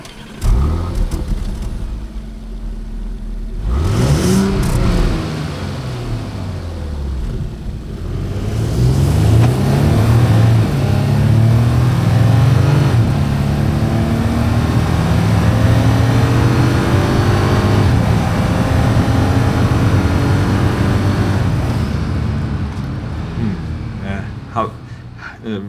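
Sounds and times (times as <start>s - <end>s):
Porsche Cayenne SUV engine revving and accelerating: 0.0s - 25.6s
noise: 0.0s - 25.6s.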